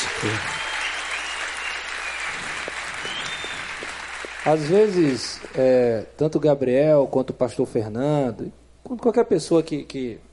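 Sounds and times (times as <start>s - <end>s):
crowd applauding teachers: 0.0s - 5.8s
speech: 0.2s - 0.6s, 4.4s - 10.3s.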